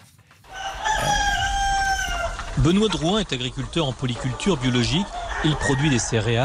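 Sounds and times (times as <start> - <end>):
free-range farm rooster crowing: 0.5 - 2.6, 4.7 - 6.4
speech: 2.6 - 6.4.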